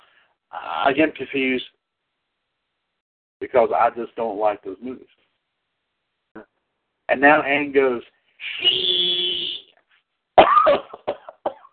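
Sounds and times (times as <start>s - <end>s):
speech: 0.5s - 1.8s, 3.4s - 5.2s, 7.1s - 9.5s
person coughing: 10.4s - 11.7s.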